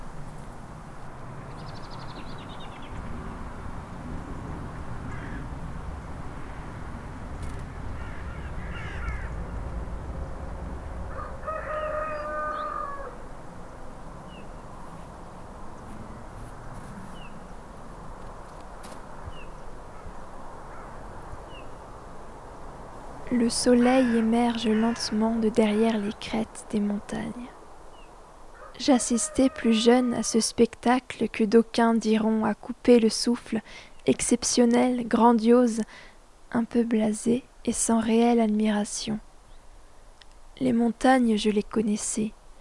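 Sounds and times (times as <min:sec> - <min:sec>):
crow-like caws at daybreak: 0:00.0 - 0:26.4, 0:27.0 - 0:30.4
birds calling at daybreak: 0:00.0 - 0:42.5
speech: 0:23.3 - 0:27.6, 0:28.8 - 0:39.3, 0:40.6 - 0:42.4.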